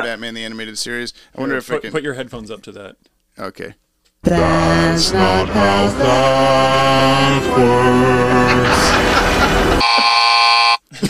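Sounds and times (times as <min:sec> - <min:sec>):
speech: 0:00.0 - 0:09.4
laughter: 0:07.2 - 0:09.8
loud harsh electronic buzzer: 0:09.8 - 0:10.8.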